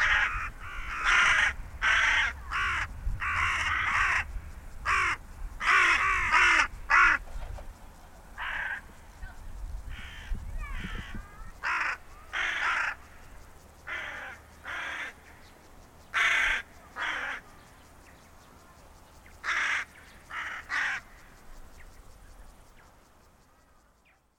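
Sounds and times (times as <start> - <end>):
carrion crow Corvus corone giving rasping caws: 0.0 - 7.3, 8.4 - 9.0, 9.9 - 15.5, 16.1 - 17.4, 19.4 - 21.4.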